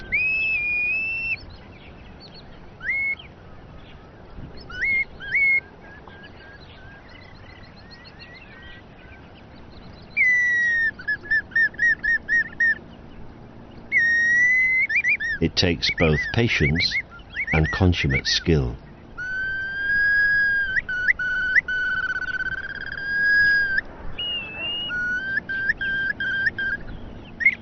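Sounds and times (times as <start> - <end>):
steady noise: 0.0 - 27.6
bamboo whistle giving bird-like calls to lure passing birds: 0.1 - 1.4, 10.1 - 12.8, 13.9 - 17.8, 19.2 - 27.6
speech: 15.6 - 17.0, 17.6 - 18.8.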